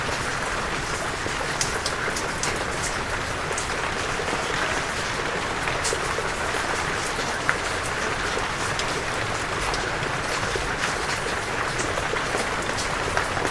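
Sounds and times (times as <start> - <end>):
storm rain falling heard from indoors in a Dorset countryside cottage: 0.0 - 13.4.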